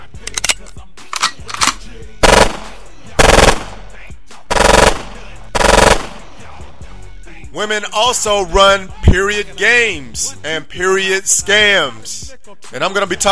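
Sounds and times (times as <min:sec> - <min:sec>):
machine-gun warning shots as a sound effect: 0:02.2 - 0:03.9, 0:04.5 - 0:06.4
speech: 0:07.6 - 0:13.3.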